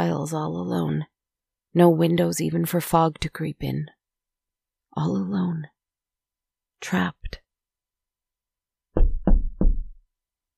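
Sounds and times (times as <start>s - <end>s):
speech: 0.0s - 1.1s, 1.7s - 4.0s, 5.0s - 5.7s, 6.8s - 7.4s
solid knocks on a door with low booming thuds: 9.0s - 10.0s.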